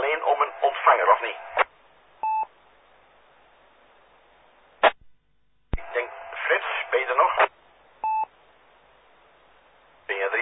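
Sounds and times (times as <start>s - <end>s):
thin band-limited radio hiss: 0.0s - 1.7s, 5.8s - 7.6s, 10.1s - 10.3s
speech: 0.9s - 1.5s.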